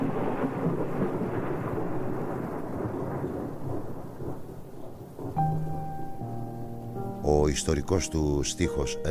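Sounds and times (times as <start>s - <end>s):
rolling thunder: 0.0s - 6.3s
steady rain: 0.0s - 9.0s
speech: 7.5s - 9.0s.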